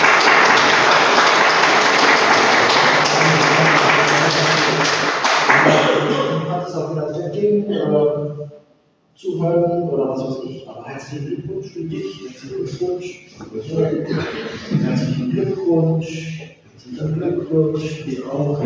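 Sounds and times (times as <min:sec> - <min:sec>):
audience applauding after a baptism: 0:00.0 - 0:06.2
laughter: 0:00.0 - 0:08.1, 0:10.9 - 0:16.0, 0:16.9 - 0:18.6
murmuring voices: 0:00.0 - 0:08.4, 0:09.2 - 0:18.6
speech: 0:09.2 - 0:18.6.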